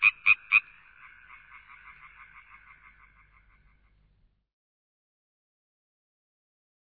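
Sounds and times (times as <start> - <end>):
frog croaks: 0.0 - 4.0.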